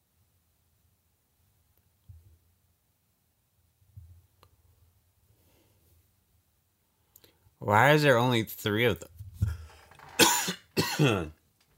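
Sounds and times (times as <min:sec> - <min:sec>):
speech: 0:07.6 - 0:09.1, 0:11.0 - 0:11.4
loud coughing: 0:10.1 - 0:11.4.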